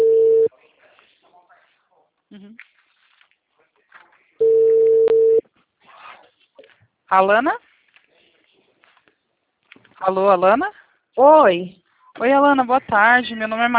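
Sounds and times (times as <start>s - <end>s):
quiet phone line noise: 0.0s - 0.5s, 4.4s - 5.4s
telephone ringback tone for an outgoing call: 0.0s - 0.5s, 4.4s - 5.4s
speech: 7.1s - 7.7s, 10.1s - 13.7s.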